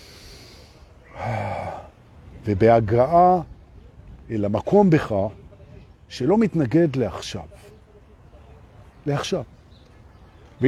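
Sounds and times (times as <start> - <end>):
deep breath inhale during a calming breathing exercise: 0.0 - 1.9
speech: 2.4 - 3.5, 4.3 - 5.4, 6.1 - 7.7, 9.0 - 9.6.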